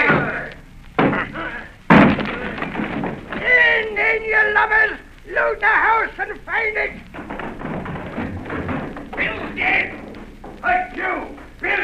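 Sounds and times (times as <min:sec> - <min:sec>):
door being broken down: 0:01.0 - 0:04.0, 0:07.0 - 0:11.8
speech: 0:04.8 - 0:07.2.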